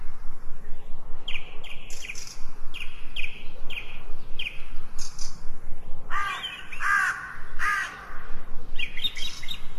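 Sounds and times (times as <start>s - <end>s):
light bird calls in a lush green forest: 0.0s - 9.7s
steady outdoor hush in a forest: 0.0s - 9.7s
harsh cawing bird notes in a lush green forest: 6.1s - 8.3s.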